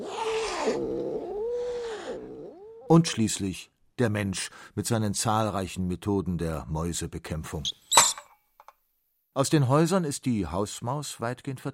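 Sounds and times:
cat meowing: 0.0 - 2.9
speech: 2.9 - 7.8, 9.4 - 11.7.

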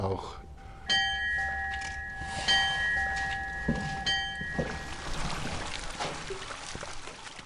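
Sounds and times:
bright ringing bell-like tones: 0.4 - 5.6
fountain water splashing from ground jets on a village square: 4.9 - 7.4.

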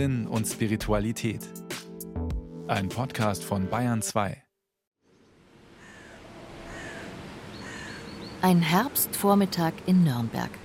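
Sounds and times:
speech: 0.0 - 1.7, 2.7 - 4.4, 8.4 - 10.6
outdoor noise: 5.0 - 10.6
crows cawing: 5.7 - 8.4.

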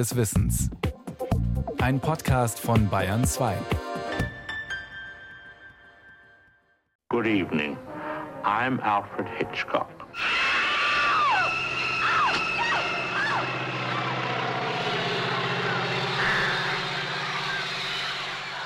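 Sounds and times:
speech: 0.0 - 0.9, 1.8 - 4.3, 7.2 - 10.4
person screaming: 10.2 - 13.5
propeller plane engine droning as it dives low over a stubble field: 10.2 - 18.6.

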